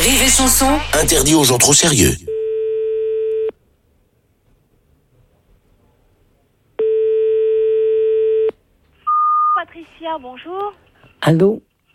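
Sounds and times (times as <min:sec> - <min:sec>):
speech: 0:00.0 - 0:02.3, 0:09.7 - 0:11.7
telephone ringback tone while placing a call: 0:02.3 - 0:03.5, 0:06.8 - 0:08.5.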